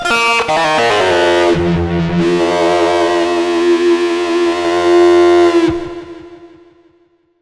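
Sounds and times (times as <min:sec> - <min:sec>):
feedback: 0:00.2 - 0:07.0.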